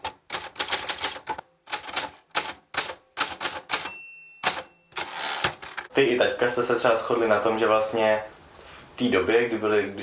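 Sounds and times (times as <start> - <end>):
typing on an old typewriter: 0.0 - 5.9
typewriter bell ding: 3.7 - 5.2
speech: 6.0 - 8.4, 9.0 - 10.0.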